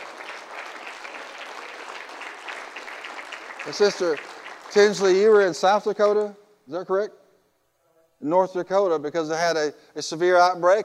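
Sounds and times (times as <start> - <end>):
audience applause: 0.0 - 5.8
speech: 3.6 - 7.2, 8.2 - 10.8.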